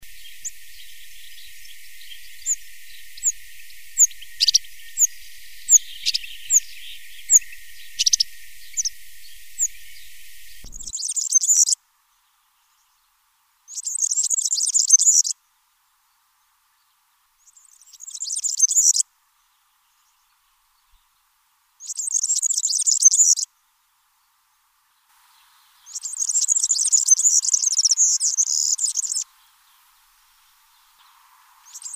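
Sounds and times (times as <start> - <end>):
European serin singing: 0.0 - 11.8, 13.7 - 15.3, 17.4 - 21.2, 21.8 - 23.5, 25.3 - 29.9, 30.7 - 31.9.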